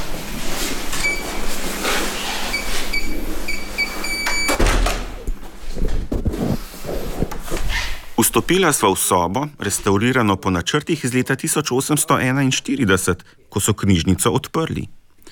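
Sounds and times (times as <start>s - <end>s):
steady room hum: 0.0s - 15.2s
wooden door opening with a heavy thud: 3.9s - 5.3s
speech: 8.4s - 15.0s.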